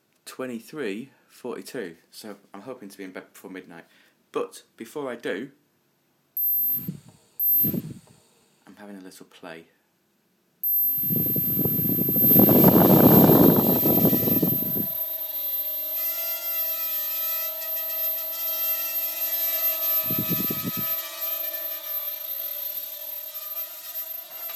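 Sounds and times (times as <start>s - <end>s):
speech: 0.4s - 5.6s, 8.8s - 9.8s
Hubsan 4X micro quadcopter drone motors whining: 6.4s - 8.1s, 10.6s - 24.5s.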